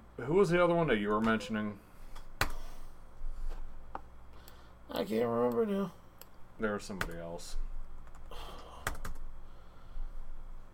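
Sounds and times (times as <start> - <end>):
speech: 0.2 - 1.9, 5.0 - 6.0, 6.6 - 7.6
typing on a computer keyboard: 8.8 - 9.2.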